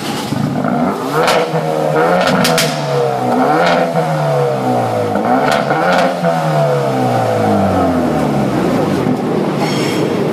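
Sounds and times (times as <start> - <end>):
front-wheel-drive car engine starting: 0.0 - 10.3.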